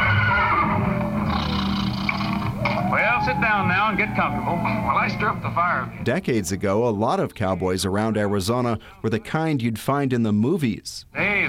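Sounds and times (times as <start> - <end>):
horse neighing on an old record: 0.0 - 6.7
old record hiss: 0.0 - 11.4
speech: 3.2 - 11.4.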